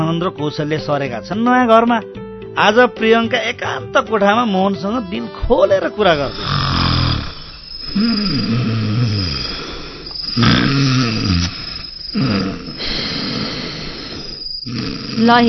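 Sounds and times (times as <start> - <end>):
speech: 0.1 - 6.9, 7.9 - 8.7, 15.2 - 15.4
man snoring loudly: 6.1 - 15.4.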